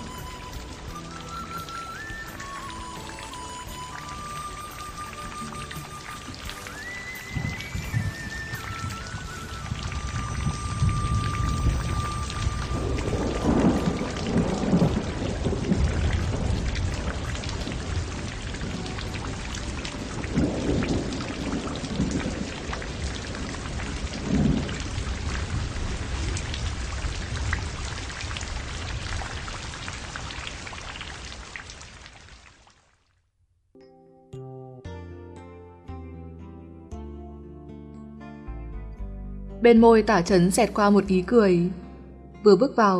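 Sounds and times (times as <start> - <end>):
steady rain pattering across a surface: 0.0 - 33.1
low rolls of thunder rumbling: 7.4 - 30.7
speech: 39.6 - 41.8, 42.4 - 42.9.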